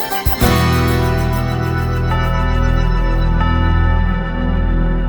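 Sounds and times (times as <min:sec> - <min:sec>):
instrumental music with bells: 0:00.0 - 0:04.9.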